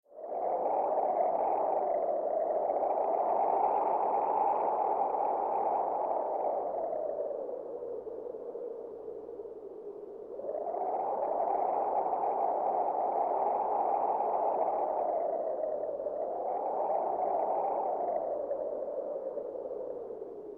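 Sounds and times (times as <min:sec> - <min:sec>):
wind: 0:00.0 - 0:20.5.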